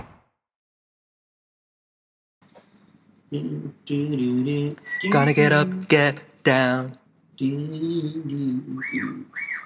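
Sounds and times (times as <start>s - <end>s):
speech: 3.3s - 9.6s
bird chirping outside an open window: 8.7s - 9.6s.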